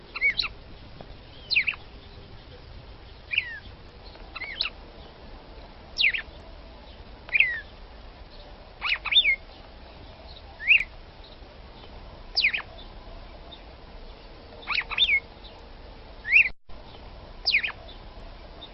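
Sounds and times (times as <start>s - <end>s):
red-cowled cardinal female singing short sweeping whistles: 0.1s - 0.5s, 1.2s - 2.1s, 3.3s - 3.7s, 6.0s - 6.3s, 7.3s - 7.7s, 8.8s - 9.4s, 10.6s - 11.4s, 12.3s - 12.9s, 14.6s - 15.6s, 16.2s - 16.6s, 17.4s - 18.0s.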